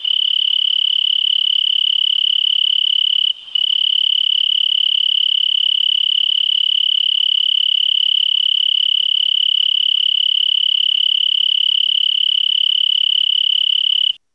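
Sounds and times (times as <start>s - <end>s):
Oecanthus pictus at 19 degrees Celsius: 0.0s - 14.2s.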